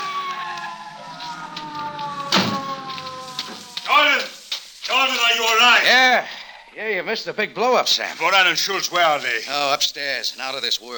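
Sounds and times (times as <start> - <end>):
police car screeching to a stop: 0.0 - 5.6
speech: 5.6 - 10.9.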